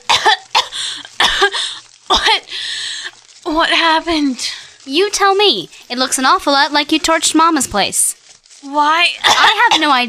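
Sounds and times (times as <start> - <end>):
girl coughing after being resuscitated: 0.0 - 2.5, 9.2 - 10.0
girl's raspy gasping breaths: 0.6 - 3.4
speech: 3.6 - 10.0.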